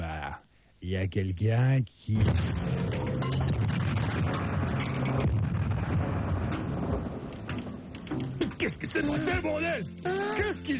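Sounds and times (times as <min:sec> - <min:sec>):
speech: 0:00.8 - 0:02.8, 0:08.6 - 0:10.7
boss exploding in a video game: 0:02.2 - 0:07.3.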